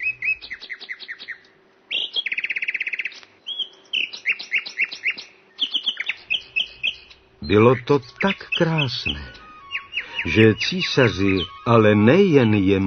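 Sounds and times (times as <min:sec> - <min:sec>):
nightingale singing: 0:00.0 - 0:12.8
speech: 0:07.5 - 0:09.4, 0:10.2 - 0:12.8.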